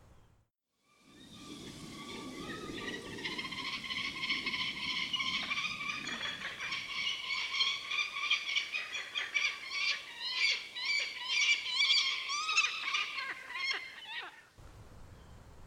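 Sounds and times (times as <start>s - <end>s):
faint low rumble of wind: 1.0s - 8.2s, 14.6s - 15.6s
peregrine falcon giving harsh creaking and wailing calls: 1.6s - 14.5s.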